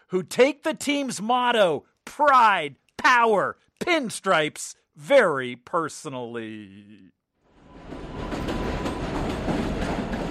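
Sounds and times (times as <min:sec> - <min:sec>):
speech: 0:00.1 - 0:07.2
elevated subway train at the 161st Street station in the South Bronx rumbling: 0:07.5 - 0:10.2.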